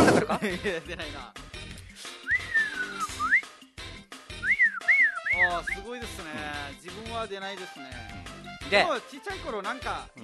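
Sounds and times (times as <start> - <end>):
laughter: 0.0 - 1.0
speech: 0.3 - 2.2, 5.4 - 10.2
person whistling with lips: 2.2 - 3.5, 4.4 - 5.9.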